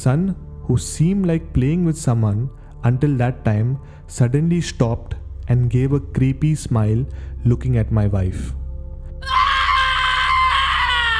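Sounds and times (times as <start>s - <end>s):
speech: 0.0s - 8.6s
woman screaming in an apartment bedroom: 9.2s - 11.1s.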